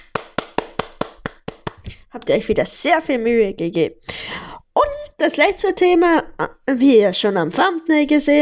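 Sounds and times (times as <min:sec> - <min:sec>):
slow sarcastic hand clapping: 0:00.0 - 0:02.0
speech: 0:02.1 - 0:04.3, 0:05.2 - 0:08.4.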